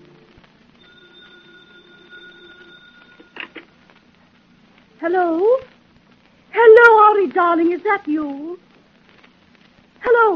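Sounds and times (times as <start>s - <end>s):
low hiss: 0.0s - 10.3s
telephone bell ringing: 0.8s - 3.8s
speech: 5.0s - 5.7s, 6.5s - 8.6s.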